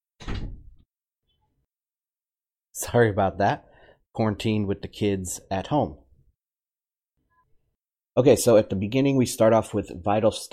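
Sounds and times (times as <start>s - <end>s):
door swinging shut with a solid thud: 0.2s - 0.9s
speech: 2.8s - 6.0s, 8.2s - 10.5s.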